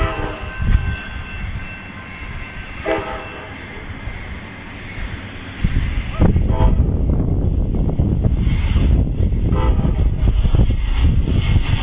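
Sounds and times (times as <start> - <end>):
train horn sounding in long tones: 0.0 - 1.2, 2.1 - 3.8, 6.2 - 7.0, 9.5 - 10.0
heavy clatter of passing rail cars: 0.0 - 11.8
train approaching a railroad crossing with rumbling roar: 0.0 - 11.8.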